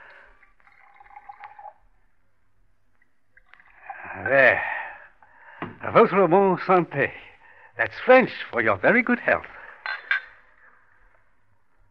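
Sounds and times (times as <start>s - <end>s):
brandy poured into snifter glasses: 0.0s - 2.0s, 3.0s - 4.6s
speech: 4.2s - 4.7s, 5.9s - 7.2s, 7.8s - 9.6s.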